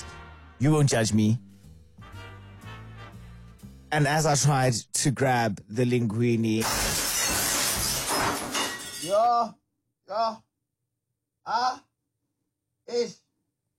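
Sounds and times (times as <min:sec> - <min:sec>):
speech: 0:00.6 - 0:01.5, 0:03.9 - 0:06.8, 0:09.0 - 0:10.5, 0:11.4 - 0:11.9, 0:12.9 - 0:13.2
glass jar of pasta sauce smashing on a tiled floor: 0:06.6 - 0:09.2.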